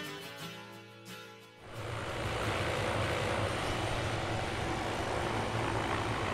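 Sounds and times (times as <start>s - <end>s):
red helicopter engine droning and rotor thump while circling and landing in a cove: 1.6s - 6.3s
rushing wind and turbine roar of a helicopter landing in a cove: 1.6s - 6.3s.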